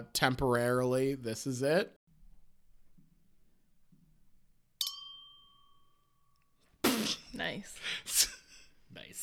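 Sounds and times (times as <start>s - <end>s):
speech: 0.0s - 2.0s, 7.3s - 9.2s
champagne glasses clinking: 4.8s - 6.0s.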